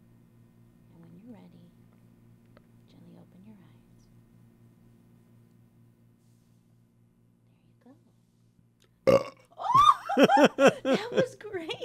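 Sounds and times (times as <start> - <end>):
deliberate loud burp: 9.1 - 9.5
laughter: 9.7 - 11.8
speech: 10.2 - 11.8.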